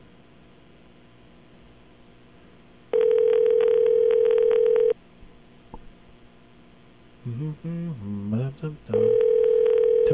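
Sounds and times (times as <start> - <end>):
telephone ringback tone on a call to a payphone in Hawaii: 2.9 - 5.0, 8.9 - 10.1
person talking: 7.2 - 10.1.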